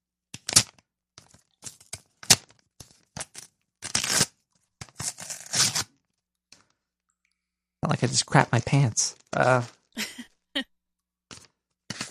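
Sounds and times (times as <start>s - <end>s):
very sticky envelope flap peeled open by hand: 0.4s - 6.0s
speech: 8.0s - 9.8s.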